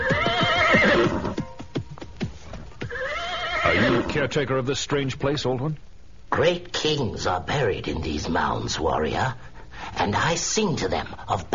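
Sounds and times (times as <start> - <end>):
horse whinnying as rider dismounts: 0.0 - 1.6, 2.6 - 4.3
speech: 4.2 - 11.5.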